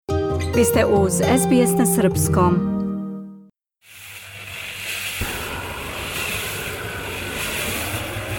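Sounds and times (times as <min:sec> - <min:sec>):
speech: 0:00.6 - 0:02.7
gas flamethrower roaring into a rotating concrete-mixer drum roasting coffee beans: 0:03.8 - 0:08.3.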